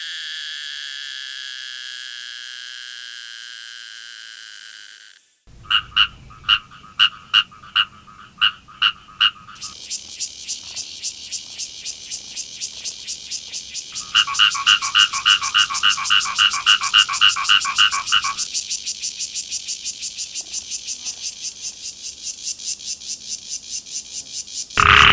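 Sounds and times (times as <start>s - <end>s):
Taiwanese cicada whine: 0.1s - 25.1s
loud fast-pulsed insect call: 4.3s - 25.1s
frog croaks: 5.5s - 9.8s, 14.0s - 18.5s, 24.8s - 25.1s
dense rapid shrill insect pulsing of katydids: 5.5s - 11.9s, 13.2s - 18.5s, 24.8s - 25.1s.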